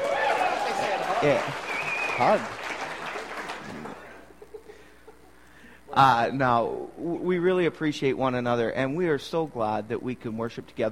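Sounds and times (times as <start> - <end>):
audience applause at a church worship service: 0.0 - 4.3
speech: 1.2 - 2.6, 6.0 - 10.9.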